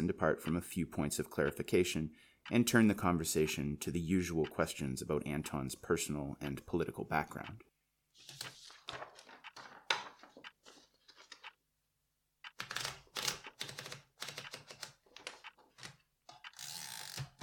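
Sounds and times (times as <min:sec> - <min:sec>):
speech: 0:00.0 - 0:08.6
typewriter keystrokes: 0:12.4 - 0:17.4.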